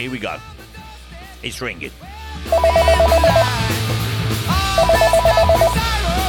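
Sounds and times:
speech: 0.0s - 0.6s, 1.4s - 2.8s
telephone ringback tone on an outgoing call: 2.5s - 3.7s, 4.7s - 5.9s.

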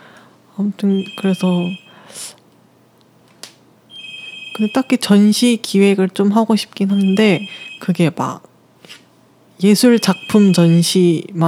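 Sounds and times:
speech: 0.6s - 2.3s, 4.6s - 9.0s, 9.6s - 11.4s
phone ringing with high electronic ringtone for an incoming call: 0.9s - 2.0s, 3.9s - 4.9s, 6.9s - 8.0s, 9.9s - 11.1s.

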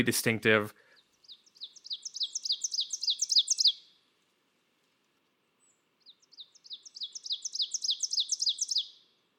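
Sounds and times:
speech: 0.0s - 0.8s
warbler singing repeated two-note teacher phrase: 0.8s - 4.0s, 5.6s - 9.1s.

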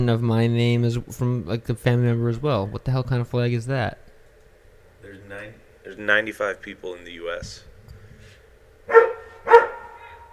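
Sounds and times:
speech: 0.0s - 4.0s, 5.0s - 7.7s
dog barking: 8.9s - 10.3s.

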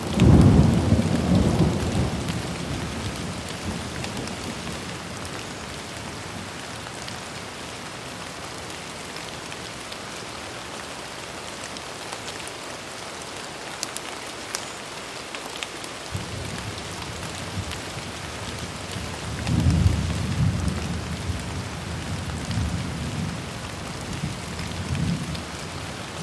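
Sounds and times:
rain on a car window: 0.0s - 26.2s
thunder: 0.1s - 3.8s.

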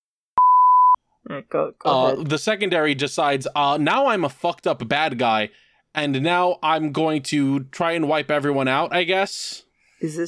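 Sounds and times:
electronic beep: 0.4s - 1.0s
speech: 1.2s - 10.2s.

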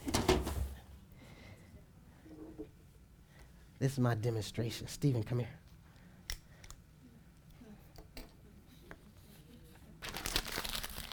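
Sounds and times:
speech: 3.8s - 5.6s
piece of paper being handled: 10.0s - 11.1s.

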